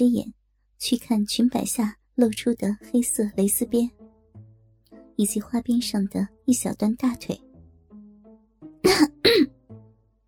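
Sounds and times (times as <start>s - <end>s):
speech: 0.0s - 4.0s, 5.2s - 7.5s, 8.8s - 9.6s
passenger coughing in the front seat of a car: 8.8s - 9.5s.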